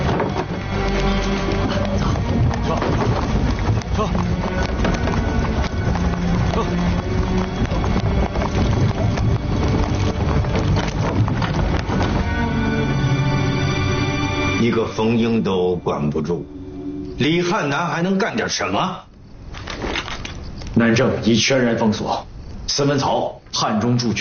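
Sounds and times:
horse-drawn carriage hooves clip-clopping: 0.0 - 15.0
wind-like noise: 0.0 - 24.1.

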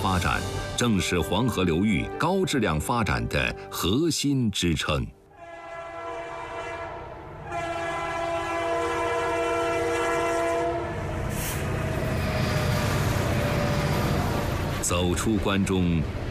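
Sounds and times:
heavy roar of a high-speed train rushing past: 0.0 - 1.7, 5.4 - 16.3
speech: 0.1 - 5.2, 15.0 - 16.2
loud sustained train horn blaring: 5.3 - 14.6.

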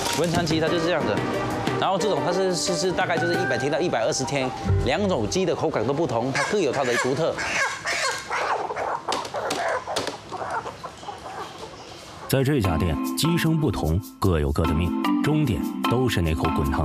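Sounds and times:
people talking: 0.2 - 1.2, 1.8 - 7.4, 12.3 - 16.8
live old hens clucking and squawking at a chicken restaurant in Shantou China: 6.2 - 12.3.

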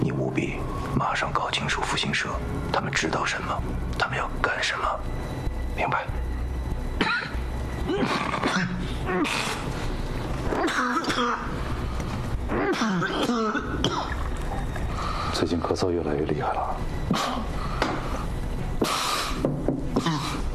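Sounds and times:
steady low rumble: 0.0 - 18.8
person coughing and clearing their throat: 7.0 - 8.8, 10.6 - 11.5, 12.6 - 14.2, 20.0 - 20.4.

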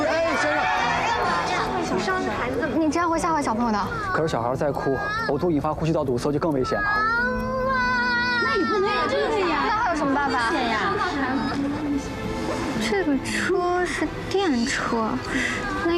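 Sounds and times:
adults talking: 0.0 - 15.9
young child crying in a child seat inside an electric car: 3.8 - 5.4, 6.6 - 9.9.

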